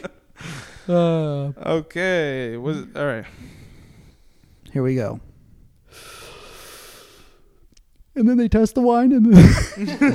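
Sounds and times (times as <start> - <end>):
long breath: 0.4 - 0.9, 3.3 - 4.6, 5.8 - 7.6
speech: 0.9 - 3.6, 4.7 - 5.3, 8.2 - 10.1
laughter: 9.3 - 10.1.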